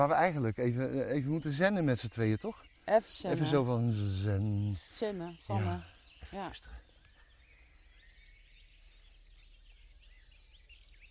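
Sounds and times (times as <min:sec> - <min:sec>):
speech: 0:00.0 - 0:06.8
several birds chirping and singing outdoors: 0:00.0 - 0:11.0.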